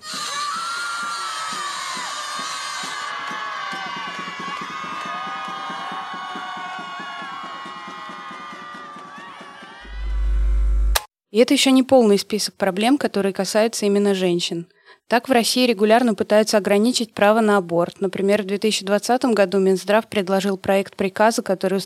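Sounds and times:
crowd screaming in anger: 0.0s - 10.6s
speech: 11.4s - 21.8s.

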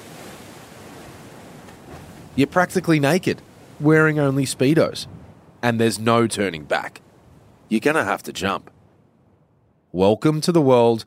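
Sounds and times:
wild ocean surf churning against sharp rocks below a sheer cliff: 0.0s - 8.7s
speech: 2.4s - 7.0s, 7.7s - 8.7s, 9.9s - 11.0s.

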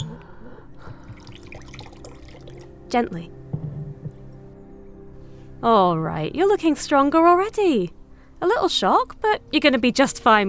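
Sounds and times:
water being poured with bubbling drips: 0.8s - 2.8s
speech: 2.9s - 3.4s, 5.6s - 10.4s.

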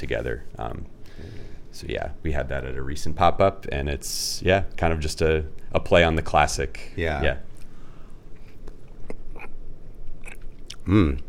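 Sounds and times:
speech: 0.0s - 7.5s, 10.9s - 11.2s
mouth sounds while eating malted ice cream frozen milkshake: 8.4s - 11.2s.

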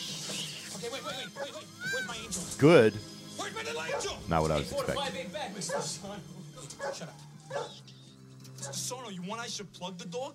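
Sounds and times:
speech: 1.0s - 3.1s, 3.8s - 7.9s, 8.6s - 10.3s
dog whimpering and whining: 1.1s - 2.2s, 6.8s - 7.8s
dog barking: 1.3s - 2.0s, 3.8s - 4.2s, 5.6s - 6.0s, 6.7s - 7.9s, 8.6s - 8.9s.

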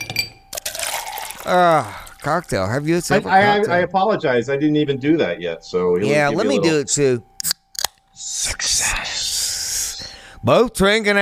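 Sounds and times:
light glassy clinks: 0.0s - 0.6s
drink pouring into a glass: 0.6s - 2.5s
speech: 1.5s - 7.6s, 8.2s - 9.0s, 10.4s - 11.2s.

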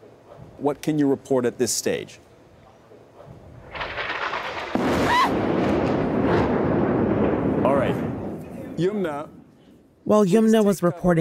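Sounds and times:
speech: 0.6s - 2.3s, 10.1s - 11.2s
airstrike explosion against a tower in Gaza City: 3.4s - 9.5s.

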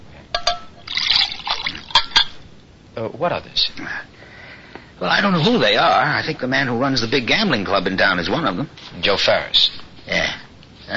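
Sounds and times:
glass clinks: 0.4s - 1.3s, 1.9s - 2.4s
water pouring into a glass: 0.8s - 2.3s
speech: 3.0s - 4.3s, 5.0s - 10.9s.

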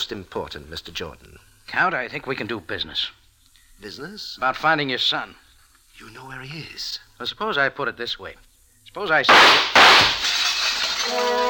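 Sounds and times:
speech: 0.0s - 3.2s, 3.8s - 5.4s, 6.0s - 10.4s, 11.1s - 11.4s
glass shattering: 9.3s - 11.4s
breaking glass shards tinkling: 10.0s - 11.4s.

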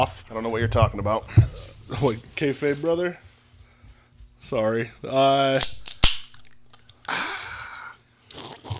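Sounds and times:
speech: 0.0s - 3.2s, 4.4s - 5.8s
can tab of orange pineapple sparkling water cracking open: 5.5s - 7.1s
slurping sip of sparkling water: 8.2s - 8.7s.

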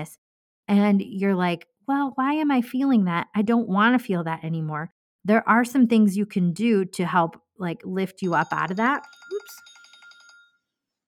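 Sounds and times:
speech: 0.0s - 9.7s
phone reminder alarm chiming in electronic pulses: 8.2s - 10.6s.

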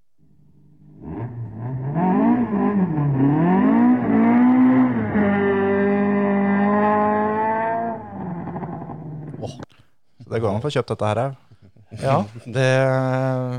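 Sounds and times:
senior-class race car engine revving: 0.4s - 9.4s
speech: 10.4s - 11.4s, 12.0s - 13.5s
laughter: 11.2s - 13.5s.

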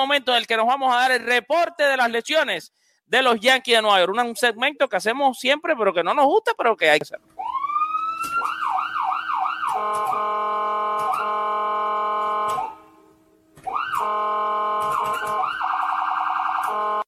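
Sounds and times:
speech: 0.0s - 7.6s, 9.7s - 10.7s
ambulance siren wailing and yelping: 7.4s - 17.0s.

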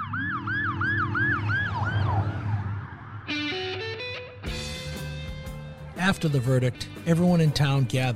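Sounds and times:
police car siren wailing: 0.0s - 4.2s
speech: 6.0s - 8.1s.

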